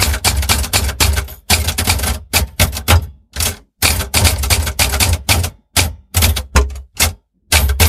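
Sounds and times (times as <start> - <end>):
typewriter keys tapping: 0.0 - 7.8.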